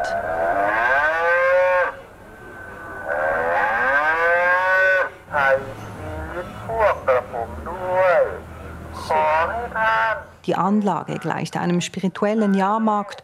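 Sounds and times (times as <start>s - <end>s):
artificial donation cow mooing at a Buddhist temple in Bangkok: 0.0s - 8.4s
short electronic voice-like bursts from a speaker: 0.0s - 10.4s
speech: 10.5s - 13.2s.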